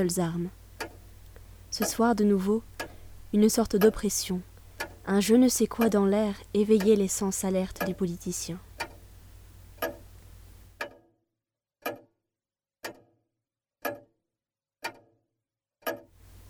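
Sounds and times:
speech: 0:00.0 - 0:00.6, 0:01.7 - 0:02.7, 0:03.3 - 0:08.7
faint hiss: 0:00.0 - 0:10.8, 0:16.2 - 0:16.4
clock ticking: 0:00.0 - 0:11.1, 0:11.8 - 0:12.1, 0:12.8 - 0:13.1, 0:13.8 - 0:14.1, 0:14.8 - 0:15.2, 0:15.8 - 0:16.2.

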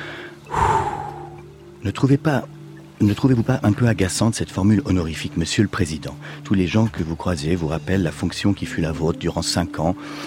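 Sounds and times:
deep breath in through the belly and out through the mouth: 0:00.0 - 0:01.4
speech: 0:01.8 - 0:10.2.

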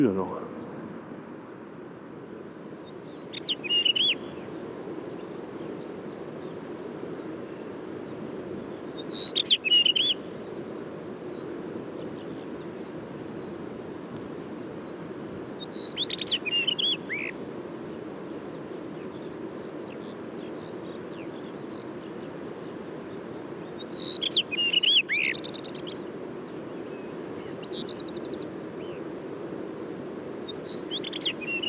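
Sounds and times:
speech: 0:00.0 - 0:00.6
rufous-tailed rock thrush singing: 0:00.0 - 0:00.8, 0:02.9 - 0:04.4, 0:09.0 - 0:10.3, 0:15.6 - 0:17.4, 0:23.0 - 0:26.0, 0:26.6 - 0:29.1, 0:30.5 - 0:31.6
wind noise from a gust of wind: 0:00.0 - 0:31.6.

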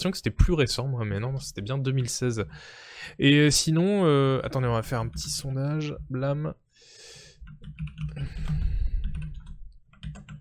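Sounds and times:
speech: 0:00.0 - 0:06.9, 0:07.5 - 0:08.7
rapid clicky computer keyboard typing: 0:04.6 - 0:06.0, 0:07.4 - 0:10.3.

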